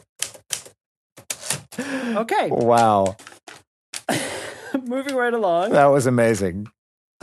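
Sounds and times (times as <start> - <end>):
manual typewriter keys clacking: 0.2 - 1.7, 2.6 - 4.1
speech: 1.8 - 3.2, 4.8 - 6.8.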